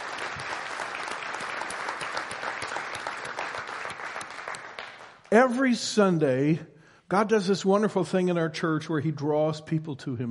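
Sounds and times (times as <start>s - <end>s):
large congregation applauding: 0.0s - 5.3s
speech: 5.3s - 10.3s.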